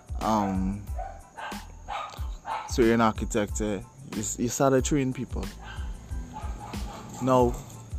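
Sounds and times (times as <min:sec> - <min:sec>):
speech: 0:00.2 - 0:00.9, 0:02.7 - 0:05.6, 0:07.2 - 0:07.7
dog barks: 0:00.3 - 0:02.8, 0:05.5 - 0:07.7.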